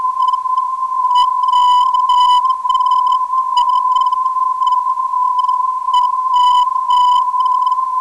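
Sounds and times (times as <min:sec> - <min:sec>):
370kHz NDB radio beacon signal: 0:00.0 - 0:07.9.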